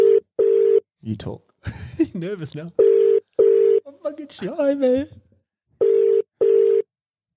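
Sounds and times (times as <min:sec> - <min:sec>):
electronic ringback tones of an unanswered outgoing phone call: 0:00.0 - 0:00.8, 0:02.8 - 0:03.8, 0:05.8 - 0:06.9
speech: 0:01.1 - 0:02.9, 0:04.0 - 0:05.2.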